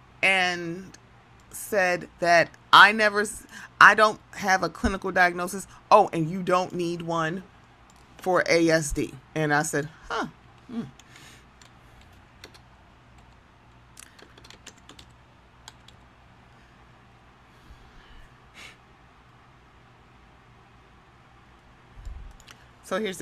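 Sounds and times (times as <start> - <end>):
speech: 0.2 - 7.5, 8.2 - 11.0, 22.9 - 23.2
typing on a computer keyboard: 11.0 - 13.4, 14.0 - 16.0.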